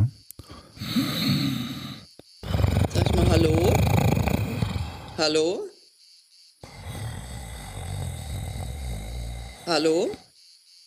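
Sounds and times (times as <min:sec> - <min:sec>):
person snoring: 0:00.4 - 0:05.3, 0:06.6 - 0:10.3
speech: 0:03.4 - 0:03.7, 0:05.2 - 0:05.7, 0:09.7 - 0:10.2.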